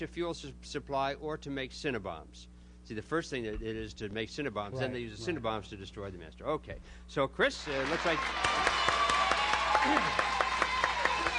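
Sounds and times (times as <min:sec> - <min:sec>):
speech: 0:00.0 - 0:08.8, 0:09.8 - 0:10.3
small group clapping in rhythmic applause: 0:07.6 - 0:11.3.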